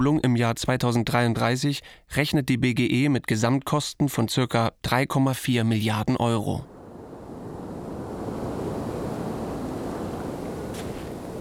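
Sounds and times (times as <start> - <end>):
speech: 0.0 - 6.8
sea surf crashing at a rugged cape above the English Channel: 6.6 - 11.3
wind roaring at a rugged windswept cape: 6.6 - 11.3.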